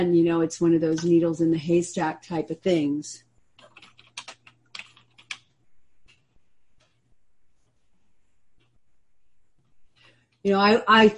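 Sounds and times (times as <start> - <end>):
speech: 0.0 - 3.3, 10.4 - 11.1
faint low hum: 0.0 - 11.1
typing on a computer keyboard: 3.6 - 7.0.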